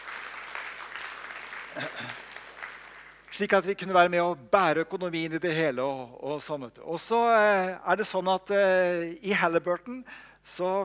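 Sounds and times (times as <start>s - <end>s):
congregation applauding during a church gathering: 0.0s - 4.1s
speech: 1.8s - 2.2s, 3.4s - 10.8s.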